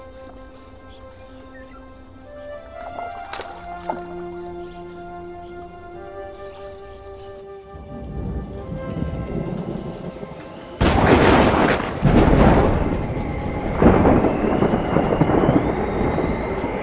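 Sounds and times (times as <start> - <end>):
strong wind in a storm at sea: 0.0 - 16.8
thunder rumbling: 0.0 - 16.8
waves crashing against a boat at sea: 8.0 - 16.8.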